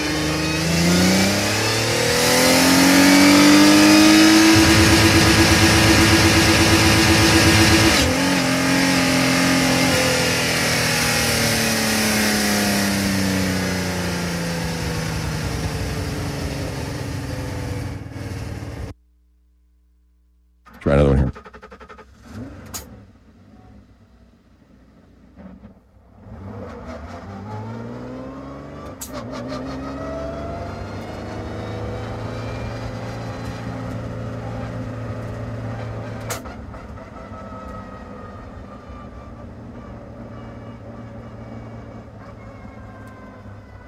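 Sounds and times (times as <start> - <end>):
car engine revving and accelerating: 0.0 - 18.9, 26.1 - 38.7.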